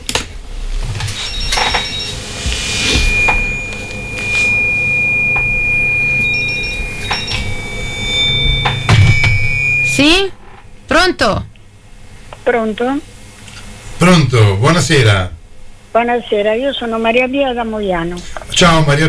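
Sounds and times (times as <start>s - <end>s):
phone ringing for an incoming call: 1.1s - 10.0s
speech: 11.1s - 11.5s, 12.5s - 13.1s, 14.0s - 19.0s.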